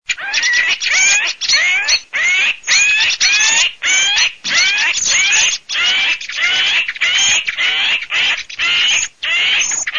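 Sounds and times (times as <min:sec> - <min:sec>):
Eurasian jay in a forest: 0:00.1 - 0:09.9.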